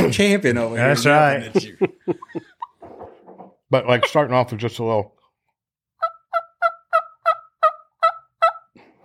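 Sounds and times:
speech: 0.1s - 2.5s, 3.7s - 5.2s
laughter: 0.6s - 2.8s
soft turkey hen yelps played on a call: 6.0s - 8.7s.

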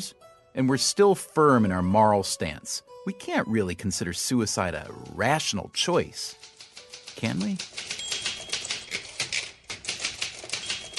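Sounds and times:
speech: 0.0s - 6.5s, 7.2s - 7.9s
woman typing fast on a Smith Corona typewriter: 4.9s - 10.9s.

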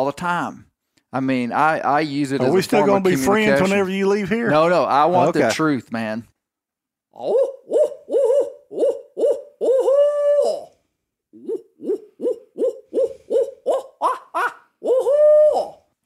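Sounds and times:
speech: 0.0s - 6.3s, 7.2s - 7.5s
person imitating owl hooting: 7.2s - 15.9s.

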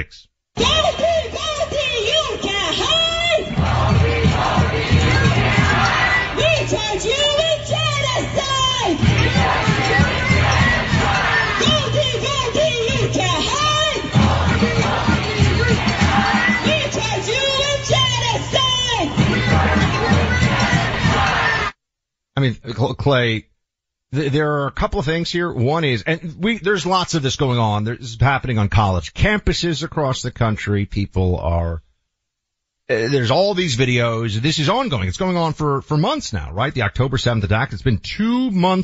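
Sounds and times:
speech: 0.0s - 1.5s, 22.4s - 23.5s, 24.1s - 31.9s, 32.9s - 38.8s
low thumping beat: 0.6s - 21.4s
large crowd of protesters chanting outside a restaurant in Philadelphia: 0.6s - 21.7s
laughter: 14.2s - 16.3s.

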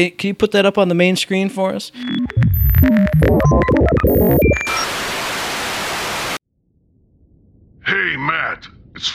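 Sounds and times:
speech: 0.0s - 5.2s, 7.9s - 9.1s
garbled warbling electronic bleeps and tones of an incoming transmission: 1.9s - 4.9s.

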